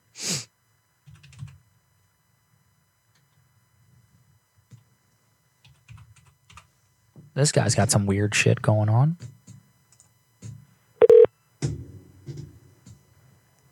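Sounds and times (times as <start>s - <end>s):
low hum: 0.0s - 13.7s
typing on a computer keyboard: 1.0s - 1.6s, 5.6s - 6.7s
speech: 7.4s - 9.4s.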